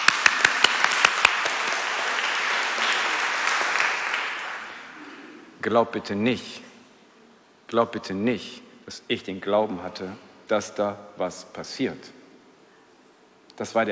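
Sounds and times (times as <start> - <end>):
audience applause: 0.0 - 5.2
speech: 5.6 - 6.6, 7.7 - 12.2, 13.6 - 13.9.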